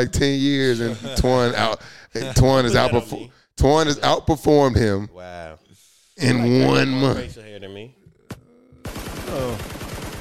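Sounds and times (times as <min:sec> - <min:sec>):
speech: 0:00.0 - 0:05.6, 0:06.2 - 0:08.0, 0:08.8 - 0:09.8
gunshot sound effect with automatic gunfire: 0:08.9 - 0:10.1.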